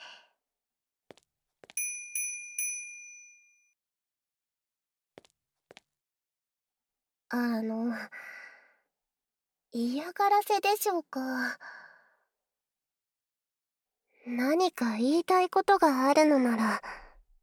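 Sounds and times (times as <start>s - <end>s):
service bell ringing to call staff: 1.8s - 3.6s
speech: 7.3s - 8.3s, 9.7s - 11.8s, 14.3s - 17.0s.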